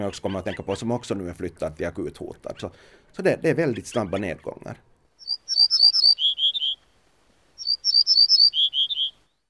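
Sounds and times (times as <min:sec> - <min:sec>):
speech: 0:00.0 - 0:04.9
ortolan bunting singing bright whistled notes: 0:05.2 - 0:06.8, 0:07.6 - 0:09.4.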